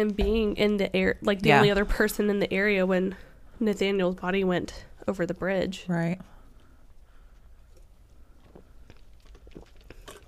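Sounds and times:
speech: 0.0 - 6.3
low hum: 0.0 - 10.2
person sipping a drink: 8.6 - 10.2.

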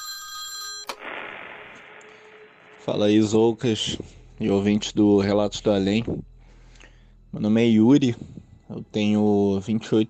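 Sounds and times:
telephone ringing with electronic tones: 0.0 - 1.0
low hiss on the open telephone line: 0.9 - 10.0
speech: 2.8 - 6.3, 7.3 - 10.0.

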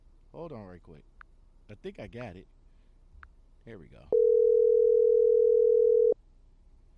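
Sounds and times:
speech: 0.4 - 2.6, 3.6 - 4.3
telephone dial tone while placing a call to a company: 4.2 - 6.2.

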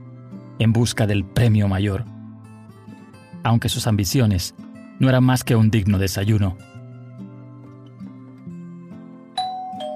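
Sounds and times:
speech: 0.6 - 2.2, 3.4 - 6.7
doorbell playing a melodic ding-dong chime: 9.4 - 9.9.

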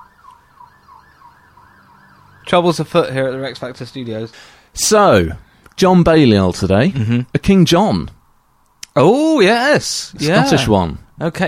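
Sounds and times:
emergency vehicle siren wailing outside: 0.0 - 2.9
speech: 2.5 - 8.2, 9.0 - 11.4.

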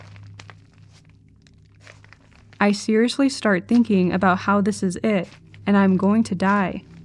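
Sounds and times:
slow footsteps crunching on leaves or gravel beside a tent: 0.0 - 2.9, 5.1 - 7.0
low constant hum: 0.0 - 7.0
speech: 2.6 - 6.9.

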